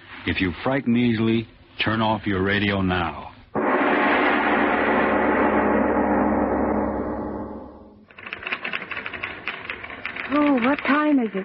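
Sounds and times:
speech: 0:00.2 - 0:03.3, 0:11.2 - 0:11.4
dense wash of sound: 0:03.6 - 0:08.1
typewriter clattering with rapid uneven keystrokes: 0:08.1 - 0:11.4.

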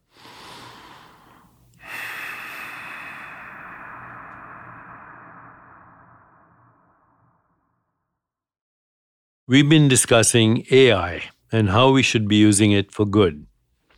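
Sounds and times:
slow deep breathing: 0:00.0 - 0:08.1
speech: 0:09.5 - 0:13.5.

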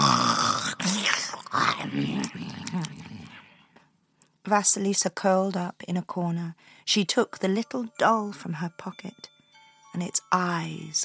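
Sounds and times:
voice imitating loud rasping witch snoring: 0:00.0 - 0:03.5
speech: 0:01.9 - 0:02.9, 0:04.5 - 0:09.3, 0:10.0 - 0:11.0.

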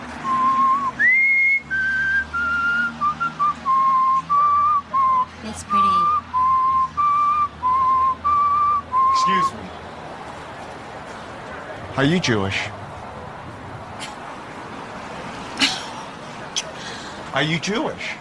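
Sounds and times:
man whistling a slow lyrical classical melody: 0:00.2 - 0:05.4, 0:06.0 - 0:09.5
speech: 0:12.0 - 0:12.8, 0:17.4 - 0:18.2.

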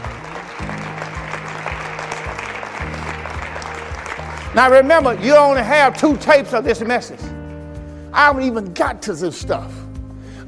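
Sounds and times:
church audience applause: 0:00.0 - 0:06.2
speech: 0:04.6 - 0:07.4, 0:08.2 - 0:09.8.

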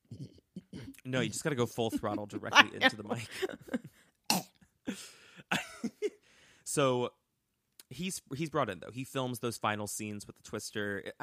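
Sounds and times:
speech: 0:01.1 - 0:03.9, 0:06.8 - 0:07.2, 0:08.0 - 0:11.2
laughter: 0:01.2 - 0:03.9
person clearing throat: 0:04.3 - 0:04.6.

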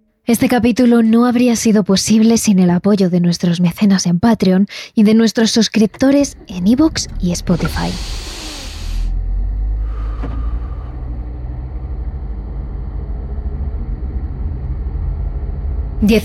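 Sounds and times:
speech: 0:00.3 - 0:08.2, 0:16.0 - 0:16.2
car engine rumble on a road at night: 0:05.7 - 0:16.2
hiss: 0:07.5 - 0:09.2.

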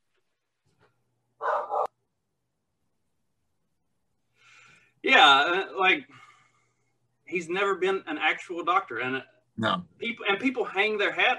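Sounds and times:
dog barking: 0:01.4 - 0:02.0
speech: 0:05.0 - 0:06.2, 0:07.3 - 0:11.3.

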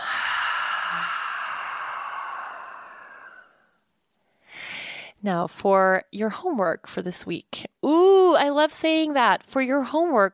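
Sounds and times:
deep breath exhaled through the mouth: 0:00.0 - 0:03.8
sharp inhale: 0:00.0 - 0:05.2
speech: 0:05.2 - 0:10.3.

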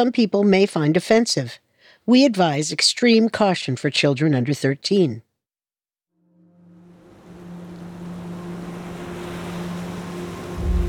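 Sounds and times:
speech: 0:00.0 - 0:05.3
low passenger boat engine drone: 0:06.2 - 0:10.8
ocean waves washing around a passenger boat sailing towards Australia: 0:06.4 - 0:10.8
wind: 0:06.4 - 0:10.8.

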